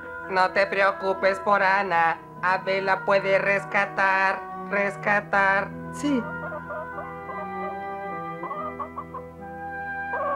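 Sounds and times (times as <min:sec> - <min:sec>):
speech: 0:00.3 - 0:06.4
hens clucking: 0:06.3 - 0:09.4, 0:10.0 - 0:10.3.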